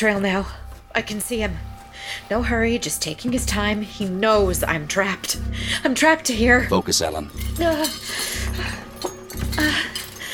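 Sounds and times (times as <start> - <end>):
speech: 0.0 - 8.9
metal pans, cast-iron frying pan and lead pipe clinking and clattering: 7.2 - 10.3.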